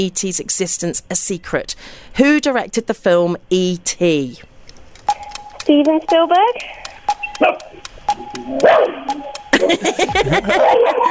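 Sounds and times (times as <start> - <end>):
speech: 0.0 - 4.5, 5.1 - 6.8, 7.4 - 11.0
dog barking with sharp yaps and whiny cries: 8.6 - 9.1, 10.5 - 11.0
laughter: 9.5 - 11.0.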